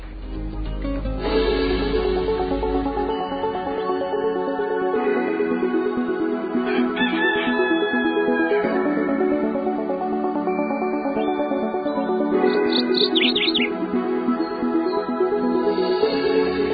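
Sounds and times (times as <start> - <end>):
steady dense musical background: 0.0 - 16.7
small bird chirping: 12.4 - 13.7.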